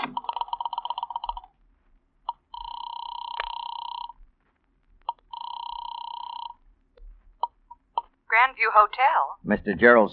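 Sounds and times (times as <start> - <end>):
telephone in a hotel guest room ringing electronically: 0.0 - 1.5, 2.3 - 4.3, 5.1 - 6.6
buzzing noise: 0.0 - 1.6, 2.3 - 4.4, 5.0 - 6.6
speech: 8.5 - 10.1.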